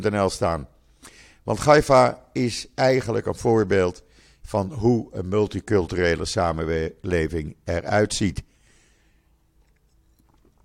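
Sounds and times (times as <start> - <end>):
speech: 0.0 - 8.5
person sipping water: 9.4 - 10.6.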